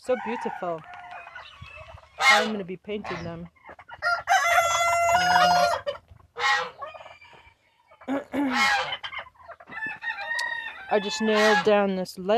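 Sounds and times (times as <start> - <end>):
speech: 0.0 - 1.6, 2.3 - 3.6, 5.2 - 6.7, 8.1 - 9.0, 10.9 - 12.3
young rooster clucking: 0.1 - 11.8
young rooster crowing: 4.0 - 7.5, 9.8 - 11.1.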